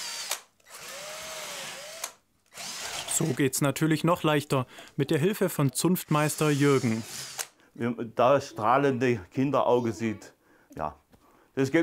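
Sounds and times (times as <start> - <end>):
power drill whirring: 0.0 - 3.4, 6.3 - 7.6
speech: 3.2 - 11.0, 11.6 - 11.8.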